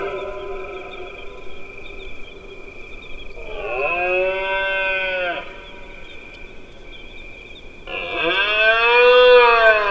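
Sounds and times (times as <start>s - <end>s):
rutting deer bellowing: 3.4s - 5.6s, 7.9s - 9.8s.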